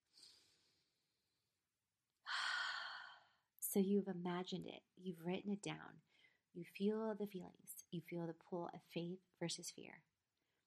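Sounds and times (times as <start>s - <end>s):
deep breath: 2.3s - 3.4s, 6.1s - 6.4s
speech: 3.7s - 10.1s.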